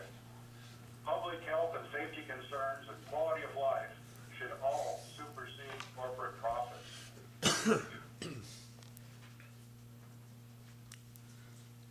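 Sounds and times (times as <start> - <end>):
faint steady hum: 0.0 - 11.8
speech: 1.3 - 7.0, 7.6 - 8.4
committee chair coughing during a legislative committee hearing: 7.4 - 8.6.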